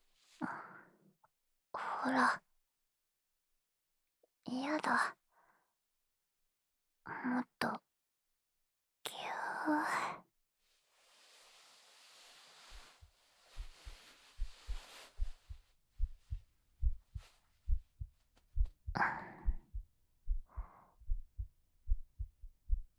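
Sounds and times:
speech: 2.0s - 2.5s, 4.5s - 5.2s, 7.1s - 7.8s, 9.6s - 10.2s
soft rustling: 10.7s - 18.8s
human heartbeat thumping: 13.5s - 22.9s.

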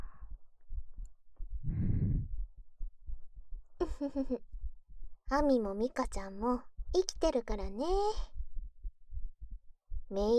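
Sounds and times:
soft rustling breath: 0.0s - 0.4s, 1.7s - 2.3s
heartbeat thumping: 0.0s - 10.3s
speech: 3.8s - 4.6s, 5.3s - 8.3s, 10.1s - 10.3s.

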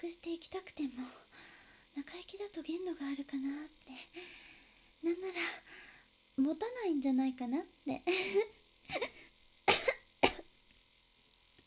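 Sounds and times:
speech: 0.0s - 9.2s
person coughing: 8.3s - 10.5s.

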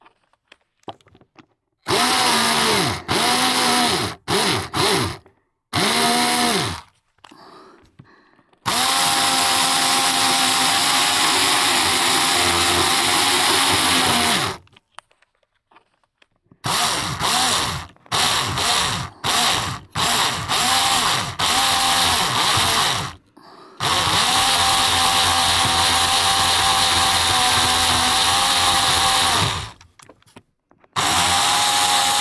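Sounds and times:
power drill with a wide bit boring through: 1.9s - 6.9s, 8.7s - 14.7s, 16.6s - 29.9s, 31.0s - 32.2s.

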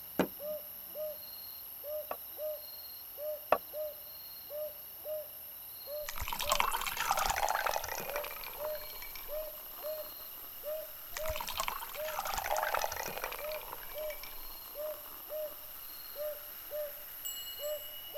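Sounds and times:
insects chirping: 0.0s - 18.1s
soda fizzing and splashing into a glass: 6.0s - 18.1s.

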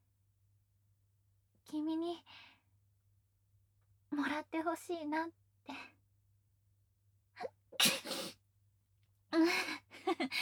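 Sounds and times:
speech: 1.7s - 2.5s, 4.1s - 5.9s, 9.3s - 10.4s
person sneezing on a cold spring night: 7.8s - 8.3s.

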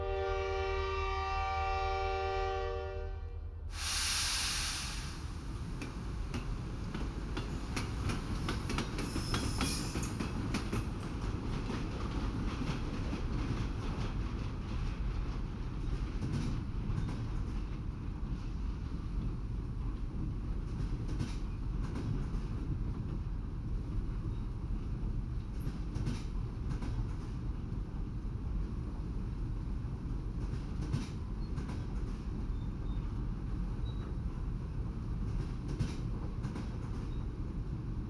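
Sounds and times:
sleeper train horn: 0.0s - 3.6s
sleeper train rolling on rails: 0.0s - 38.0s.

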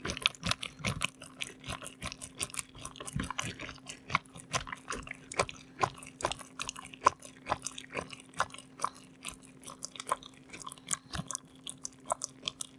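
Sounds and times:
fast squishing ASMR sounds: 0.0s - 12.7s.

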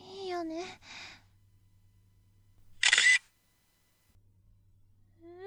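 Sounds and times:
camera shutter click: 2.8s - 3.3s.

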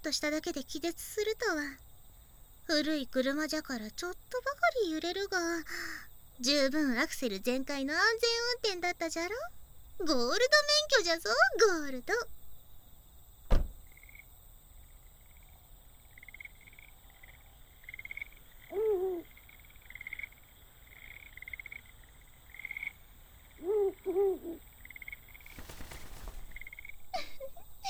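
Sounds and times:
speech: 0.0s - 1.9s, 2.7s - 12.4s
bird hooting at night: 18.2s - 19.5s, 23.4s - 24.7s.

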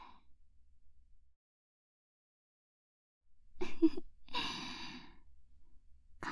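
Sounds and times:
speech: 3.8s - 4.1s
person breathing in and out: 4.4s - 5.2s.

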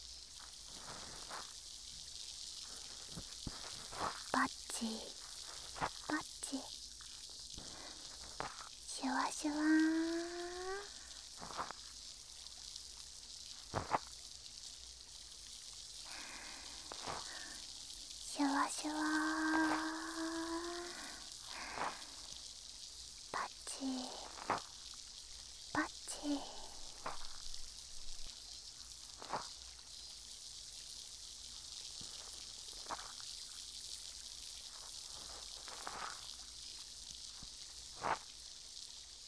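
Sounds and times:
steady fizzing hiss with scattered crackles and small clicks: 0.0s - 39.2s
soft voice murmuring: 4.4s - 5.2s, 5.9s - 6.7s, 8.9s - 11.0s, 16.1s - 17.6s, 18.2s - 22.2s, 23.4s - 24.6s, 25.8s - 28.3s.

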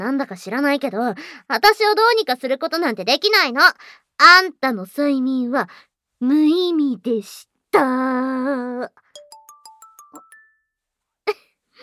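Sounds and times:
speech: 0.0s - 9.0s
phone ringtone for an incoming call: 9.2s - 10.8s.

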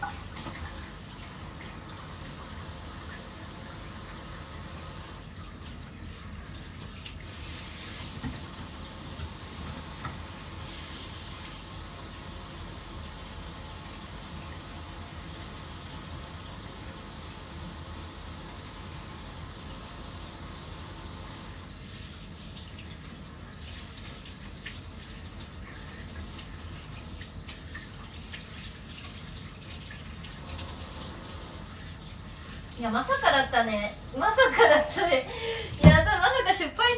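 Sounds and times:
water running from a tap into a washbasin during washing: 0.0s - 36.6s
speech: 32.8s - 35.9s.

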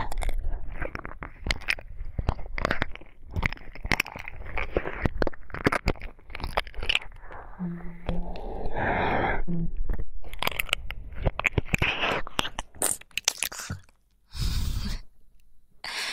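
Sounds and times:
crunchy wet biting: 0.0s - 7.5s, 10.2s - 14.0s
breathy sighs and exhalations: 7.4s - 9.8s.

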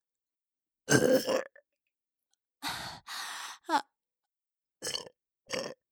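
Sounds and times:
burping: 0.9s - 1.6s, 4.8s - 5.8s.

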